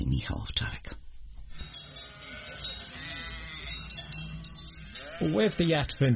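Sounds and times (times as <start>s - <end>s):
speech: 0.2s - 1.0s, 5.2s - 6.1s
flock of sheep bleating: 1.7s - 6.1s.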